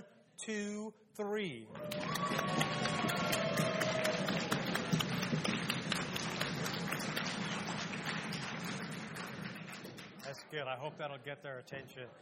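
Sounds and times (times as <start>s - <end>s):
speech: 0.4s - 3.7s, 10.3s - 12.2s
large audience clapping at a service: 1.7s - 10.5s
audience stomping feet: 1.8s - 10.2s.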